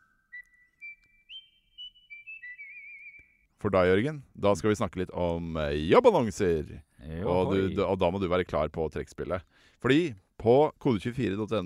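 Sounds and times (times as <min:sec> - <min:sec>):
short whistled podcast jingle: 0:00.0 - 0:03.5
speech: 0:03.6 - 0:11.6.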